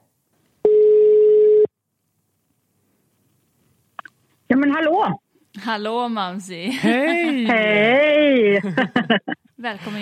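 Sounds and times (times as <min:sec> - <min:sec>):
telephone ringing tone while placing a call: 0:00.6 - 0:01.7
speech: 0:04.6 - 0:10.0
laughter: 0:06.7 - 0:09.5.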